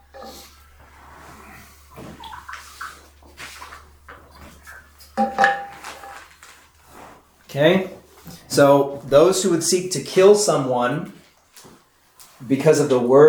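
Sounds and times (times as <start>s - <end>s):
person sipping water: 0.0s - 8.5s
low steady hum: 0.0s - 13.2s
speech: 7.5s - 11.2s, 12.5s - 13.2s.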